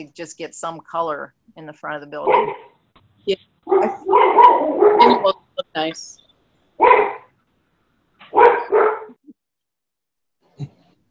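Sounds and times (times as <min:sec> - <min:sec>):
speech: 0:00.0 - 0:06.2
dog barking: 0:02.2 - 0:02.7, 0:03.7 - 0:05.3, 0:06.8 - 0:07.3, 0:08.3 - 0:09.2.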